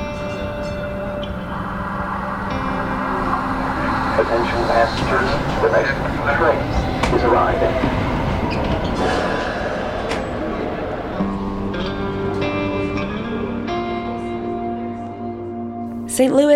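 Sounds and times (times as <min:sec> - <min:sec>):
faint squeals of a light rail commuter train: 0:00.0 - 0:12.8
light rail commuter train rumble and rattling wheels in St. Louis, Missouri: 0:00.0 - 0:13.2
voices murmuring: 0:00.0 - 0:15.0
rising electric whine of a light rail commuter train: 0:00.0 - 0:16.1
speech: 0:04.2 - 0:09.5, 0:16.2 - 0:16.5.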